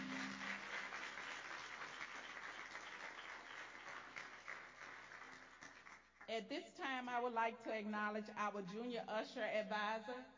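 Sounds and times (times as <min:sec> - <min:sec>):
crowd applauding with many hands clapping: 0:00.0 - 0:06.2
speech: 0:06.3 - 0:10.3.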